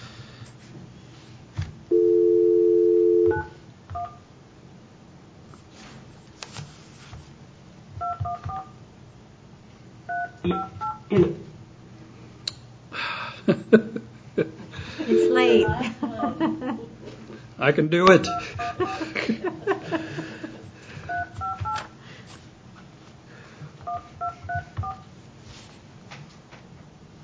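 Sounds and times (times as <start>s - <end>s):
telephone dial tone: 1.9s - 4.1s, 15.1s - 15.7s
telephone touch-tone keypad beeping tones: 1.9s - 4.2s, 8.0s - 8.7s, 10.1s - 11.1s, 15.1s - 16.3s, 18.2s - 18.8s, 21.1s - 21.8s, 23.9s - 25.0s
laughter: 13.5s - 17.0s, 18.2s - 20.8s
speech: 17.7s - 18.9s.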